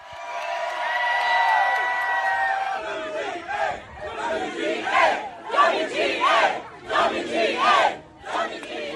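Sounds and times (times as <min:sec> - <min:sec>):
large outdoor crowd of striking writers shouting: 0:00.0 - 0:08.9
striking writers crowd chanting union abbreviation: 0:02.6 - 0:08.9.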